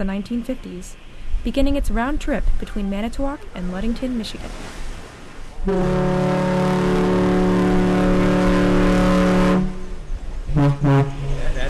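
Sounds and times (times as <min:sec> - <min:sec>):
speech: 0:00.0 - 0:04.8, 0:05.6 - 0:06.5
car ferry horn sounding a salute on the lake: 0:05.6 - 0:11.6.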